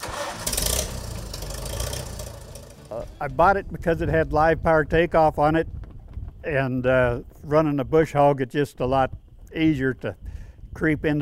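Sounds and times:
Farmall 350 tractor engine in Kansas starting and idling: 0.0s - 4.0s
speech: 3.0s - 5.8s, 6.4s - 11.2s.

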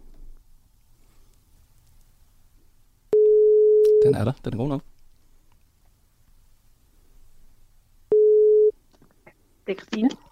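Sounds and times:
low hum: 0.0s - 10.3s
telephone ringback tone of outgoing call: 3.2s - 4.1s, 8.1s - 8.7s
speech: 4.1s - 4.9s, 9.7s - 10.3s.

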